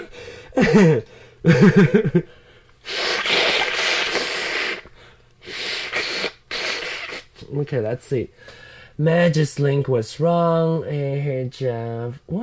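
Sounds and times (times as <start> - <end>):
speech: 0.6 - 3.2, 7.5 - 12.4
person blowing nose hard into a tissue: 2.8 - 7.4.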